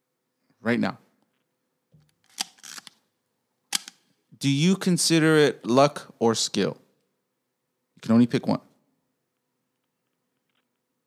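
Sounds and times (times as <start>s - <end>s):
speech: 0.6s - 1.0s, 4.4s - 6.8s, 8.0s - 8.7s
mechanical camera shutter clicks: 3.7s - 4.0s.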